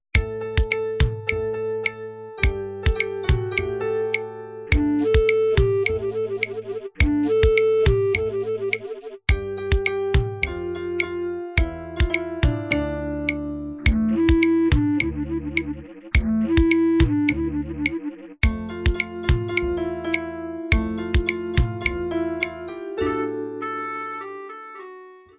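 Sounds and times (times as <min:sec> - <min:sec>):
vibraphone: 0:00.2 - 0:06.0, 0:09.3 - 0:14.8, 0:18.4 - 0:24.1
flute: 0:02.4 - 0:08.8, 0:13.8 - 0:20.2, 0:20.9 - 0:25.3.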